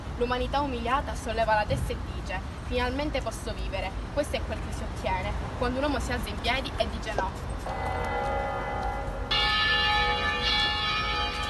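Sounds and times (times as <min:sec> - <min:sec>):
speech: 0:00.2 - 0:08.3
church bells ringing with layered sustained tones: 0:07.7 - 0:11.4.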